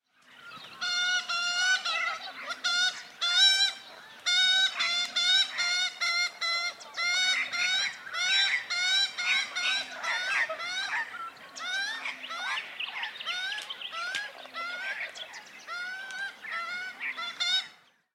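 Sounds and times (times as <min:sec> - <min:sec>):
Australian Magpie Gymnorhina tibicen: 0:00.3 - 0:17.8.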